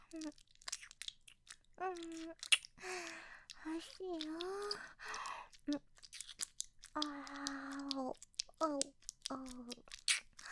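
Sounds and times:
wet mouth clicks and smacks from gentle nibbling on an earlobe: 0.0s - 10.5s
speech: 0.1s - 0.5s, 1.8s - 5.9s, 7.0s - 10.0s
brief hummed vocal tones: 1.8s - 2.4s, 3.0s - 4.9s, 7.0s - 9.8s.

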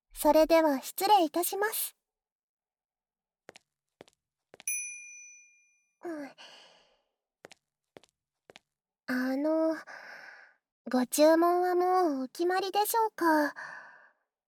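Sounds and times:
speech: 0.2s - 2.0s, 6.0s - 6.6s, 9.1s - 10.2s, 10.9s - 13.8s
call bell ringing to summon a maid: 4.7s - 5.9s.

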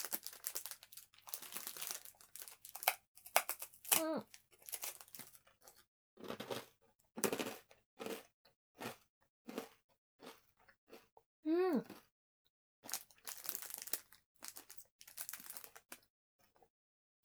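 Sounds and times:
rice cracker wrapper crinkling: 0.0s - 5.4s, 12.9s - 16.0s
hard Japanese rice cracker crunching: 0.0s - 6.6s, 7.2s - 8.2s, 12.8s - 16.0s.

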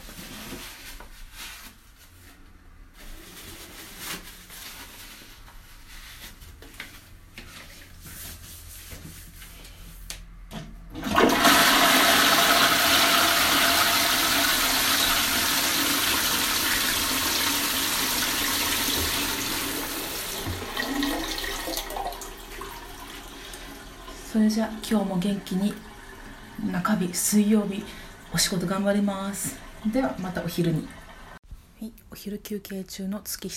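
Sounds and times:
toilet flushing: 10.9s - 31.4s
speech: 24.5s - 25.9s, 26.8s - 31.0s, 32.2s - 33.5s.

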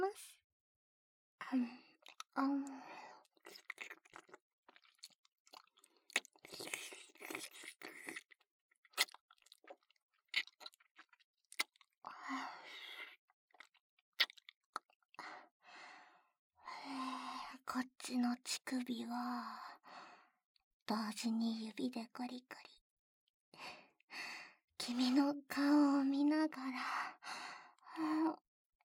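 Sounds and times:
speech: 0.1s - 0.4s, 1.4s - 1.8s, 2.4s - 4.4s, 17.7s - 19.8s, 20.9s - 22.8s, 23.6s - 27.4s, 28.0s - 28.4s
wet licking and mouth sounds: 3.4s - 11.9s.

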